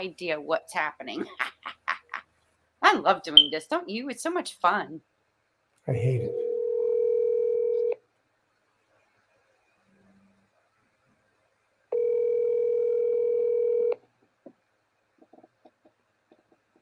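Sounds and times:
speech: 0:00.0 - 0:01.5, 0:02.8 - 0:05.1, 0:05.8 - 0:06.4
phone line ringback tone: 0:06.3 - 0:08.0, 0:12.0 - 0:14.0.

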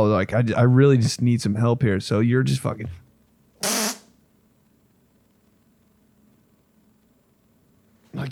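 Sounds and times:
speech: 0:00.0 - 0:03.0
fart: 0:03.6 - 0:04.2.

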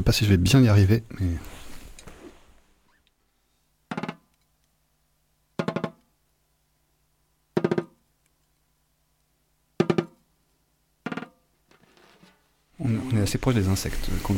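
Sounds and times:
speech: 0:00.0 - 0:01.6, 0:13.2 - 0:14.3
drumstick tapping lightly on a drum kit: 0:03.9 - 0:04.3, 0:05.6 - 0:06.1, 0:07.6 - 0:08.0, 0:09.8 - 0:10.2, 0:11.0 - 0:12.4.

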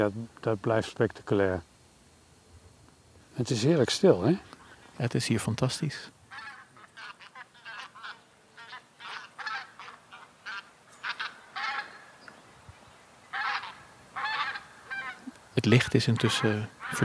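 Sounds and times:
speech: 0:00.0 - 0:01.7, 0:03.4 - 0:06.2, 0:15.6 - 0:17.0
many geese honking at dusk: 0:06.3 - 0:12.2, 0:13.3 - 0:17.0.

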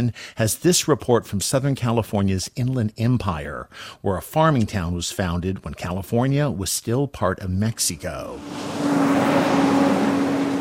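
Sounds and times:
speech: 0:00.0 - 0:09.8
delivery trucks rumbling past on street: 0:07.9 - 0:10.5.

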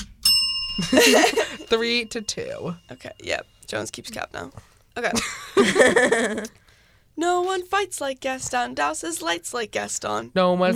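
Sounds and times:
small bell ding: 0:00.2 - 0:04.4
laughter or voices: 0:00.8 - 0:01.8, 0:05.1 - 0:06.5
speech: 0:00.8 - 0:06.6, 0:07.2 - 0:10.7.

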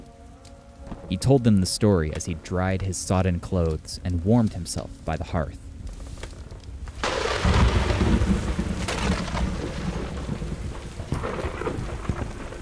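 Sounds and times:
speech: 0:01.1 - 0:05.6
heavy rain pouring: 0:06.5 - 0:12.5
deep rumble of thunder: 0:06.7 - 0:12.5.

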